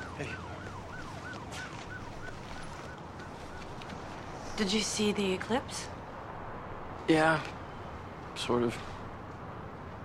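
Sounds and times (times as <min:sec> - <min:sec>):
emergency siren yelping at an ambulance bay: 0:00.0 - 0:04.2
dense rumble of traffic and street noise: 0:00.0 - 0:10.0
speech: 0:00.2 - 0:00.6, 0:04.6 - 0:06.0, 0:07.1 - 0:07.6, 0:08.4 - 0:08.9.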